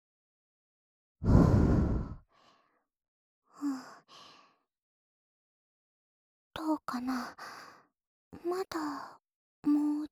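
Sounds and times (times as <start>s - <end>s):
speech: 1.2s - 1.6s, 6.6s - 7.6s, 8.4s - 10.1s
gentle breath blowing: 1.2s - 2.7s.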